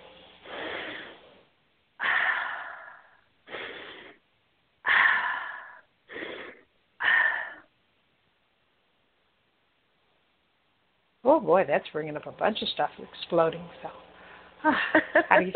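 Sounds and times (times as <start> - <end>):
deep wheezy breaths during a guided breathing session: 0.4 - 7.7
speech: 11.4 - 15.5.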